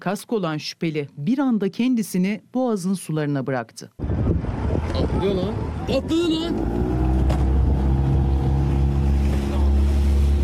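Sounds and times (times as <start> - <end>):
speech: 0.0 - 4.2, 5.0 - 6.9
water rushing and splashing around motorboat: 4.3 - 10.4
motorboat engine droning: 4.5 - 10.4.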